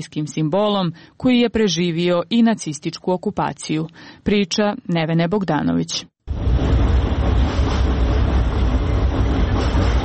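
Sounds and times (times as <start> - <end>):
speech: 0.0 - 6.4
tram rumbling across a bridge with rolling wheels and rattling carriage: 6.3 - 10.0.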